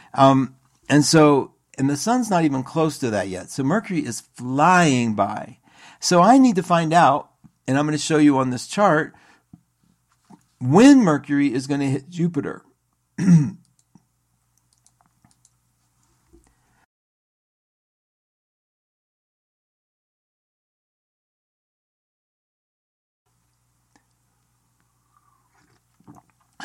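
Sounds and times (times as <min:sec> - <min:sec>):
speech: 0:00.1 - 0:09.3, 0:10.6 - 0:13.6
person clearing throat: 0:13.2 - 0:13.6
faint clicks: 0:13.6 - 0:16.5.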